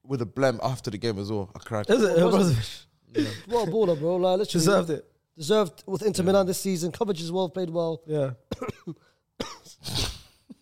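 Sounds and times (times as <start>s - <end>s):
speech: 0.1s - 10.0s
person coughing harshly: 3.2s - 4.0s, 8.5s - 10.5s.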